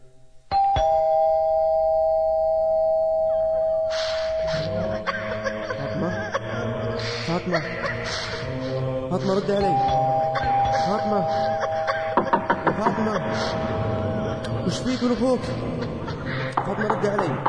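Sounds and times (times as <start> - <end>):
doorbell ringing with a sharp electronic tone: 0.5 - 5.0, 9.6 - 12.2
laughter: 4.4 - 17.4
speech: 9.1 - 10.2, 10.8 - 11.7, 12.8 - 16.0, 16.7 - 17.4.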